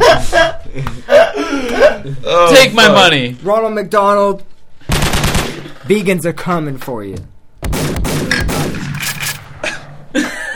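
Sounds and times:
laughter: 0:00.0 - 0:02.3, 0:09.6 - 0:10.5
speech: 0:02.6 - 0:05.2, 0:05.9 - 0:07.3
gunshot sound effect: 0:04.9 - 0:05.8, 0:07.6 - 0:10.0.

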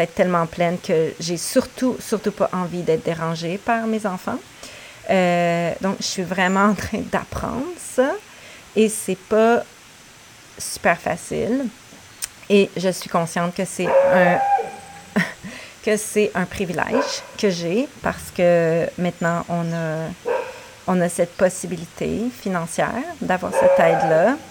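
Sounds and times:
speech: 0:00.0 - 0:09.7, 0:10.6 - 0:11.8, 0:12.5 - 0:24.4
dog whining and yelping: 0:13.9 - 0:15.2, 0:23.6 - 0:24.4
woman laughing: 0:15.1 - 0:15.7.

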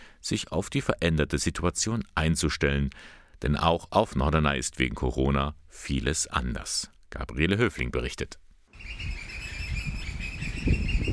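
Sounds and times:
wind on the island of Norderney amid sea and dunes: 0:00.0 - 0:11.1
speech: 0:00.2 - 0:09.2
birds chirping in a chorus on the island of Norderney: 0:08.8 - 0:11.1.

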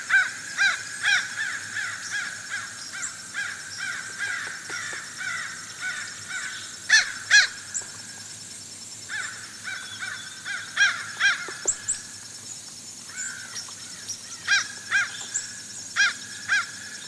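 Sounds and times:
fish crows calling to each other: 0:00.1 - 0:07.6, 0:09.1 - 0:11.8, 0:16.0 - 0:17.0.

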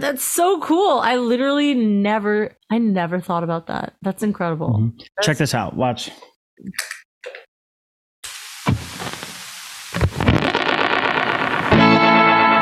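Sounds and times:
speech: 0:00.0 - 0:07.4
heavily effected guitar with delay and reverb tails: 0:10.2 - 0:12.6
plucked guitar notes: 0:11.7 - 0:12.6.

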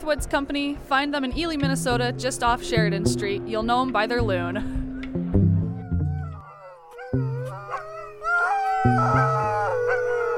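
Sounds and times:
speech: 0:00.0 - 0:04.8
team of sled dogs howling together: 0:05.6 - 0:10.3.

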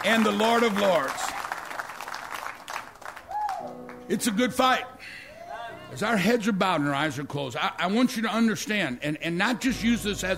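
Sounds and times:
speech: 0:00.0 - 0:01.2, 0:04.1 - 0:05.2, 0:05.9 - 0:10.3
church audience clapping: 0:00.0 - 0:04.1
person whooping: 0:03.3 - 0:03.8, 0:05.3 - 0:05.9.

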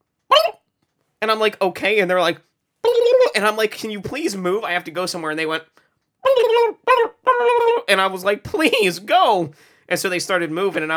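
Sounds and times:
person imitating turkeys gobbling: 0:00.3 - 0:00.6, 0:02.8 - 0:03.6, 0:06.2 - 0:08.9
speech: 0:01.2 - 0:05.8, 0:06.4 - 0:10.9.

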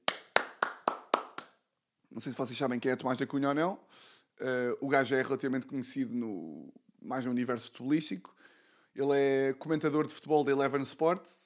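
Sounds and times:
hand claps: 0:00.0 - 0:01.6
speech: 0:02.1 - 0:11.4.

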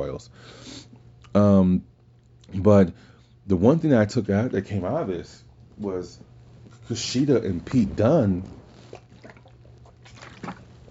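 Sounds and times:
speech: 0:00.0 - 0:01.9, 0:02.5 - 0:06.3, 0:06.9 - 0:08.6
low steady electrical hum: 0:00.0 - 0:10.8
water pouring into a container: 0:08.9 - 0:10.8.

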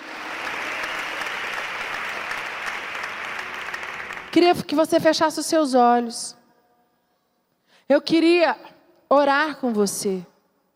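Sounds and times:
crowd applauding: 0:00.0 - 0:04.4
speech: 0:04.4 - 0:06.4, 0:07.9 - 0:10.3.

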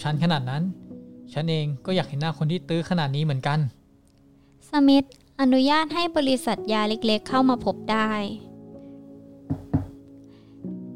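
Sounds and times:
speech: 0:00.0 - 0:03.8, 0:04.6 - 0:08.5
faint thump: 0:09.5 - 0:10.0
solid knocks on a door: 0:09.5 - 0:10.0.

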